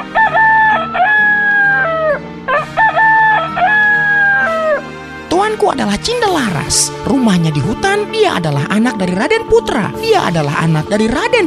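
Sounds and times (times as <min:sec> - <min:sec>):
rooster crowing: 0:00.0 - 0:04.9
speech: 0:05.6 - 0:11.4.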